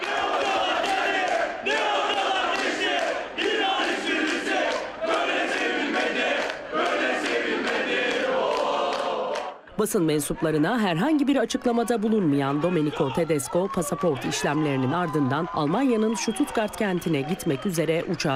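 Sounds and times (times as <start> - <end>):
football fans chanting in unison at an airport: 0.0 - 9.7
speech: 9.8 - 18.3.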